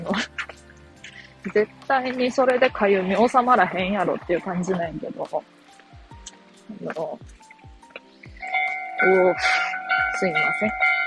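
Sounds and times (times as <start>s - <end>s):
speech: 1.4s - 5.6s, 6.7s - 7.4s, 9.0s - 9.6s, 10.2s - 10.9s
railroad crossing warning bell clanging: 8.4s - 11.0s.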